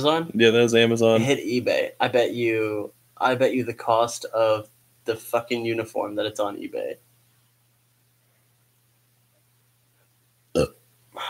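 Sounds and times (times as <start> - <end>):
speech: 0.0 - 7.1, 10.6 - 11.2
burp: 10.5 - 11.2.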